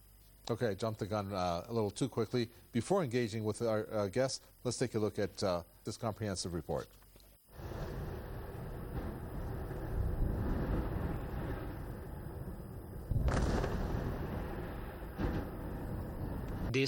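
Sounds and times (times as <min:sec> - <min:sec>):
speech: 0:00.5 - 0:07.0
artillery blasts: 0:07.5 - 0:16.8
artillery bombardment in the besieged Gaza Strip: 0:07.6 - 0:16.7.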